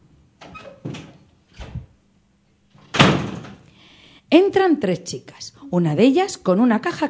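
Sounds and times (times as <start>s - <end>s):
door creaking: 0.4s - 1.9s, 2.7s - 3.7s
door knocks: 2.9s - 3.6s
speech: 4.3s - 7.0s.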